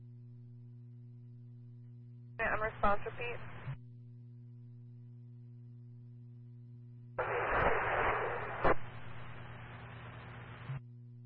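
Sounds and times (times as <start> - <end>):
steady low hum: 0.0 - 11.2
harsh radio static in a tinny channel: 2.4 - 3.8, 7.2 - 10.8
speech: 2.4 - 3.8.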